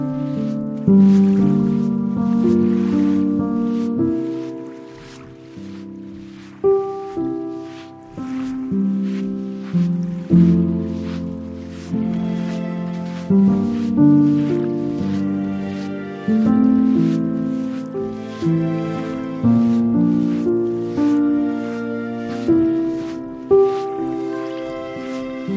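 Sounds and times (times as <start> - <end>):
Columbia River lapping: 0.0 - 25.5
piano: 0.0 - 25.5
strings: 0.0 - 25.5.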